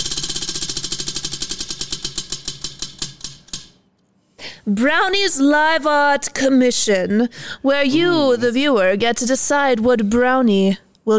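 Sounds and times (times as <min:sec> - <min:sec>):
prize wheel spinning and ticking: 0:00.0 - 0:03.8
speech: 0:04.7 - 0:11.1.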